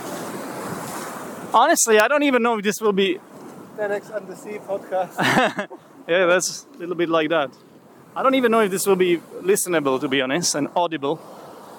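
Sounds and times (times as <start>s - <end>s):
ocean surf washing onto a beach: 0.0s - 11.7s
speech: 1.5s - 11.4s
laughter: 5.1s - 6.0s.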